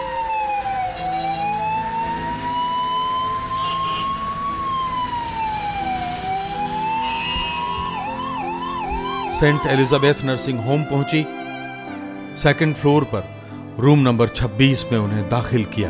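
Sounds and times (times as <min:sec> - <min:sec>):
ambulance siren wailing and yelping: 0:00.0 - 0:11.8
speech: 0:09.4 - 0:11.4, 0:12.4 - 0:15.8.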